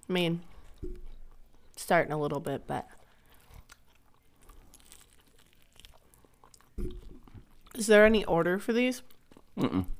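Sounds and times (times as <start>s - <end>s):
speech: 0.1s - 1.0s, 1.8s - 3.0s, 7.8s - 9.9s
chewing and biting on chicken wings: 3.0s - 7.8s, 9.0s - 9.9s.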